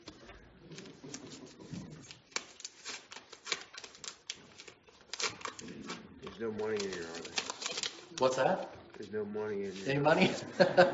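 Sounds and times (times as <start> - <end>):
envelope being opened by hand: 0.0 - 8.6
speech: 6.4 - 7.4, 8.2 - 10.9
laughter: 10.2 - 10.9.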